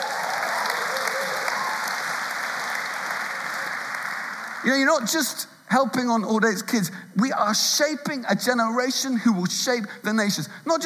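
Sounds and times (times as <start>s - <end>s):
room full of people clapping and cheering: 0.0s - 5.1s
speech: 4.6s - 10.8s.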